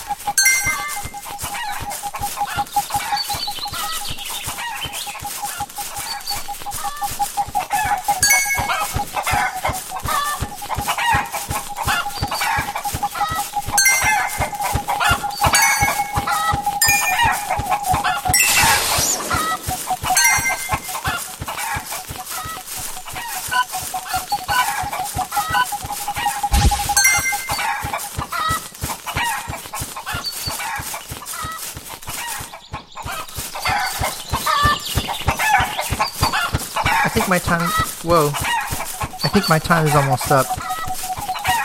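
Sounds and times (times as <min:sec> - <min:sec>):
chickens clucking: 0:00.0 - 0:41.6
steady mid-pitched tone: 0:00.2 - 0:03.0, 0:05.3 - 0:23.0, 0:23.8 - 0:27.9
speech: 0:38.0 - 0:38.5, 0:39.4 - 0:40.7.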